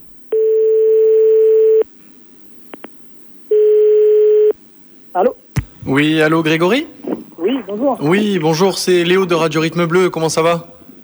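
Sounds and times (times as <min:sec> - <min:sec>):
telephone ringback tone: 0:00.4 - 0:01.8, 0:03.5 - 0:04.5
speech: 0:05.2 - 0:07.0, 0:07.8 - 0:10.7.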